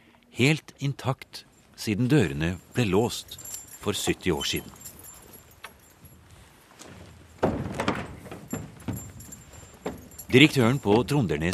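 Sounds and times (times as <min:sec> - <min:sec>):
speech: 0:00.4 - 0:04.8, 0:10.3 - 0:11.5
keys jangling and clinking: 0:01.6 - 0:11.5
soft thuds: 0:04.7 - 0:10.4.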